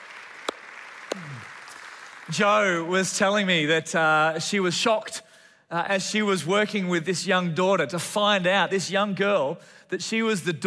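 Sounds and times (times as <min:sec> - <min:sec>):
audience applause: 0:00.0 - 0:02.9
speech: 0:01.2 - 0:01.6, 0:02.3 - 0:10.6.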